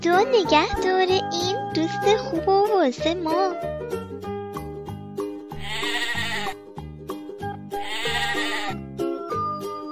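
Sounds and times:
speech: 0.0s - 4.0s
bouncy rhythmic musical backing: 0.0s - 9.8s
sheep bleating: 5.6s - 6.6s, 7.8s - 8.8s.

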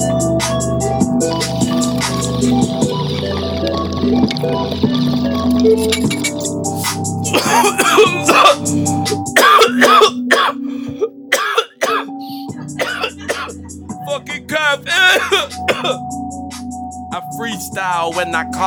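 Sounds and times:
steady music: 0.0s - 18.6s
bubbling gurgling sound: 1.1s - 8.5s
person coughing hard after hitting a dab: 7.3s - 13.6s, 14.9s - 16.0s
speech: 18.2s - 18.6s.

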